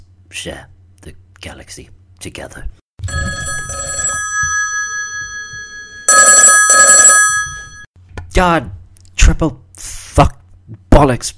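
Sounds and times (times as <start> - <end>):
speech: 0.3 - 2.8, 8.4 - 11.3
telephone ringing: 3.0 - 7.9.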